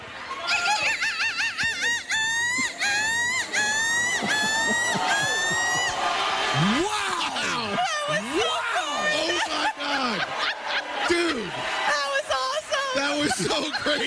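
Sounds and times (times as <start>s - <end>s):
crowd laughing: 0.0s - 14.0s
woman imitating seagull screeches in a crowd contest: 0.8s - 6.0s.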